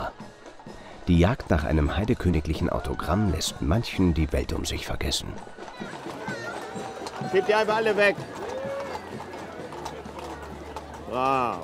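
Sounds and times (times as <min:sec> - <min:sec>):
horses' hooves clip-clopping at an outdoor public event: 0:00.4 - 0:11.6
speech: 0:01.1 - 0:06.1, 0:07.3 - 0:08.4, 0:11.1 - 0:11.6.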